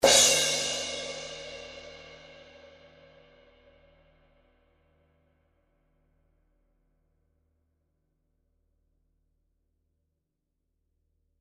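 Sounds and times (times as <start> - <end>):
18in custom fast crash cymbal: 0.0 - 3.1.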